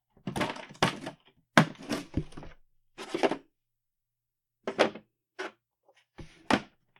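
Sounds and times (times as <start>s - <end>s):
toolbox shuffling: 0.3s - 3.4s.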